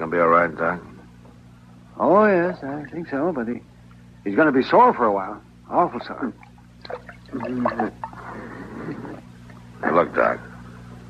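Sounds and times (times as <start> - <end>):
speech: 0.1 - 0.9, 2.0 - 8.1, 9.8 - 10.5
water dripping and splashing from wet cloth onto a beaten man: 6.4 - 7.8.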